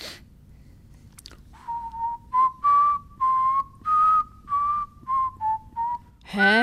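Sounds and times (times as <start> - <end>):
person whistling an anthem melody: 1.6 - 6.2.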